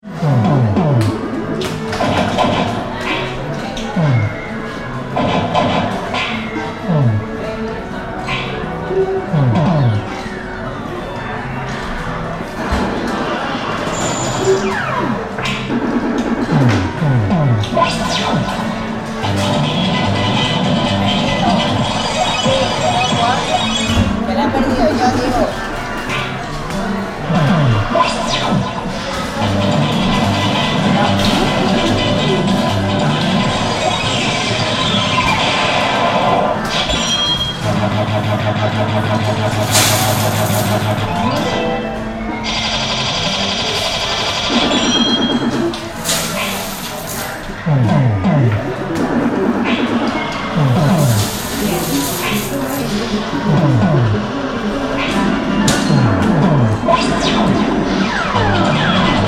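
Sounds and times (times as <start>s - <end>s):
amusement arcade gaming machines: 0.0s - 59.2s.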